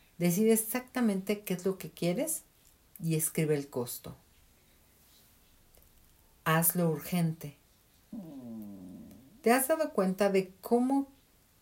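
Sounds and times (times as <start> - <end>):
speech: 0.2 - 4.2, 6.4 - 8.4, 9.4 - 11.2
dog whining: 8.1 - 9.7.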